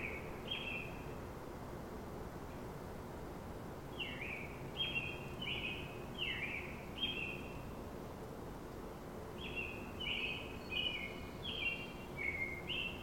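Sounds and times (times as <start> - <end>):
American robin morning song: 0.0 - 1.3, 3.9 - 8.0, 9.0 - 13.0
faint steady background noise: 0.0 - 13.0.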